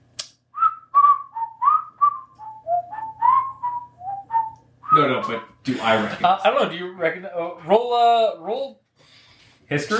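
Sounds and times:
person whistling a melodic tune: 0.6 - 5.6
speech: 5.0 - 8.8, 9.7 - 9.9.

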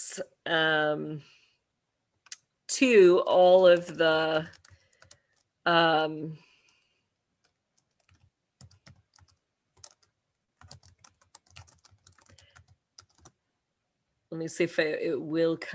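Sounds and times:
speech: 0.1 - 1.4, 2.7 - 4.6, 5.6 - 6.5, 14.3 - 15.7
typing a search phrase on a computer keyboard: 4.5 - 5.5, 7.4 - 13.4.

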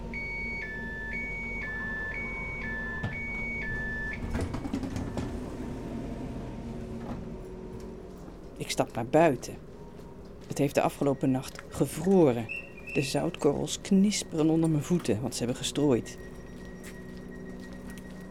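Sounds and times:
shrill two-tone train door warning signal: 0.0 - 5.4, 9.8 - 18.3
train doors closing with a thud and rumble: 0.0 - 18.3
speech: 8.7 - 9.7, 10.6 - 16.3.

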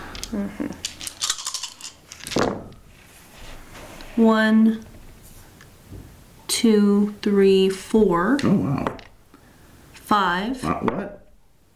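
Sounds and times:
dice rolled on a hard surface during a tabletop game: 0.2 - 2.6
speech: 0.3 - 1.0, 4.2 - 4.9, 6.6 - 9.0, 10.1 - 11.2.

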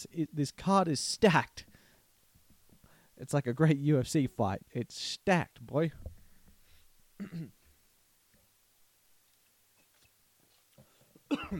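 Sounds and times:
speech: 0.0 - 1.7, 3.2 - 6.1, 7.2 - 7.6, 11.3 - 11.5
cough: 7.2 - 7.6, 11.3 - 11.5
throat-clearing rasp: 7.2 - 7.7, 11.3 - 11.5.

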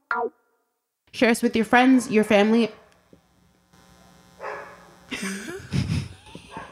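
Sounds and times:
speech: 1.2 - 2.8
dog barking loudly: 4.4 - 4.8
laughter: 5.1 - 6.7.

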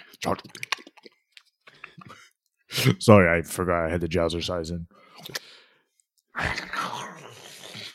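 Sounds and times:
speech: 0.2 - 0.6, 2.8 - 5.5, 6.4 - 6.7
crunching and gnawing through the floor: 0.2 - 2.0.

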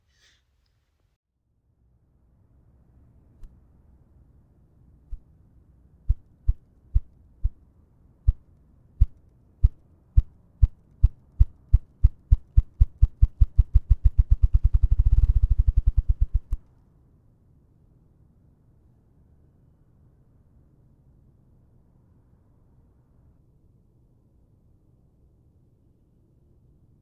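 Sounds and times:
male bird wing-drumming thumps in courtship display: 6.1 - 7.6, 9.0 - 16.6.

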